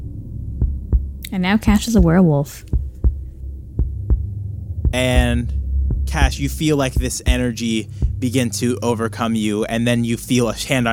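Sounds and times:
steady low hum: 0:00.0 - 0:10.9
deep heartbeat thumping: 0:00.5 - 0:08.6
speech: 0:01.3 - 0:02.8, 0:04.9 - 0:10.9.

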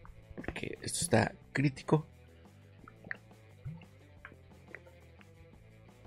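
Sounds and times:
speech: 0:00.6 - 0:02.2
person sipping water: 0:02.8 - 0:03.9.

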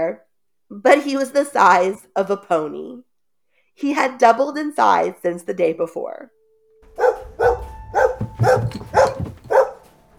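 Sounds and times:
speech: 0:00.1 - 0:03.1, 0:03.8 - 0:06.4
huge dog barking ferociously: 0:07.0 - 0:09.8.

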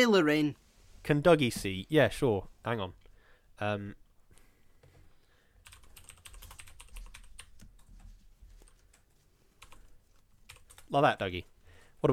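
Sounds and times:
speech: 0:00.0 - 0:03.0, 0:03.6 - 0:04.0, 0:10.9 - 0:12.1
typing on a computer keyboard: 0:05.6 - 0:10.9.

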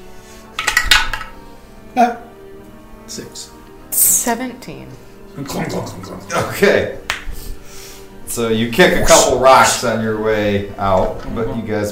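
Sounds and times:
dice clattering through a dice tower during a tabletop role-playing game stealth check: 0:00.6 - 0:01.4
speech: 0:02.0 - 0:02.3, 0:03.1 - 0:07.0, 0:08.4 - 0:11.9.

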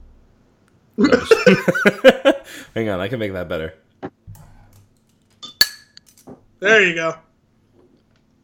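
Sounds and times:
laughter: 0:01.0 - 0:02.6
speech: 0:01.0 - 0:03.8, 0:06.6 - 0:07.3
beer glass knocking against a hard surface: 0:05.4 - 0:06.0.

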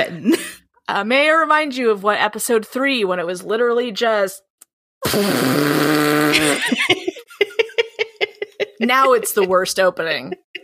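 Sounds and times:
speech: 0:00.0 - 0:07.6, 0:08.8 - 0:10.4
loud drawn-out buzzy fart noise with wobbling pitch: 0:05.0 - 0:06.6
short rhythmic bursts of laughter: 0:06.3 - 0:09.6, 0:10.2 - 0:10.6.

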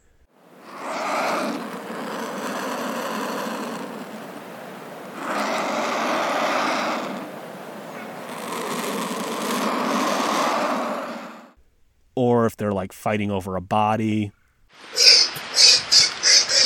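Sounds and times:
vultures hissing: 0:00.5 - 0:11.6, 0:14.8 - 0:16.6
speech: 0:12.2 - 0:14.4.

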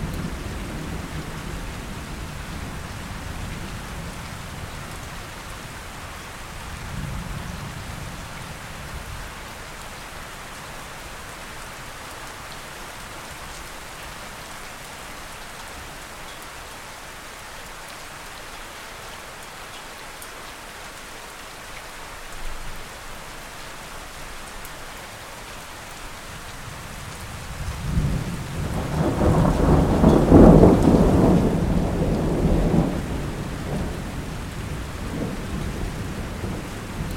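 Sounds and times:
steady rain: 0:00.0 - 0:37.1
thunder rumbling: 0:26.7 - 0:37.1.

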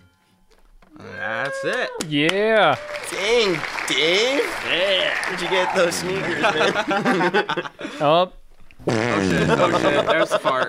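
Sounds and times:
speech: 0:01.0 - 0:10.6
laughter: 0:03.1 - 0:08.0, 0:09.0 - 0:10.6
buzzy fart produced with the mouth: 0:08.8 - 0:10.2.

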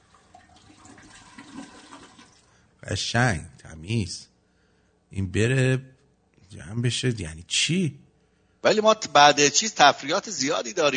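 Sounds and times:
toilet flushing: 0:00.0 - 0:02.6
speech: 0:02.9 - 0:04.3, 0:05.1 - 0:05.9, 0:06.5 - 0:08.0, 0:08.6 - 0:10.9.

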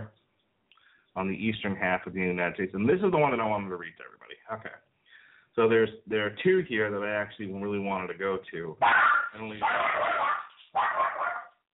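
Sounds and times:
speech: 0:01.2 - 0:04.9, 0:05.6 - 0:10.2
dog barking and whimpering: 0:08.8 - 0:11.6.

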